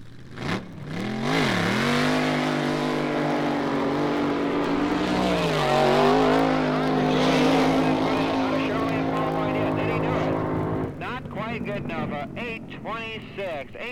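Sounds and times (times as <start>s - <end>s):
Chevrolet race car engine roaring on a qualifying lap: 0.0s - 13.9s.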